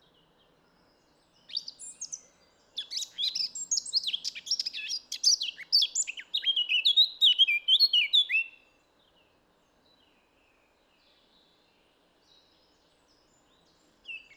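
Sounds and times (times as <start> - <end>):
Eurasian blackcap Sylvia atricapilla singing a varied fast warble with flute-like whistles: 2.8 - 8.6.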